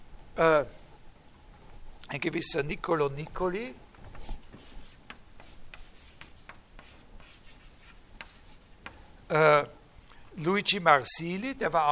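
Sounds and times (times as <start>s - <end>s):
speech: 0.4s - 0.8s, 2.1s - 3.8s, 9.3s - 9.8s, 10.4s - 11.9s
writing names on a board during a lecture: 4.2s - 9.0s.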